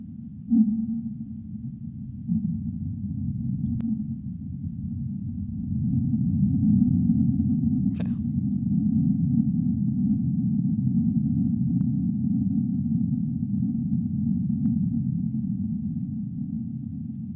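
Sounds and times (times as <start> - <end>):
sped-up underwater rumble of an oncoming earthquake among whales: 0.0 - 17.3.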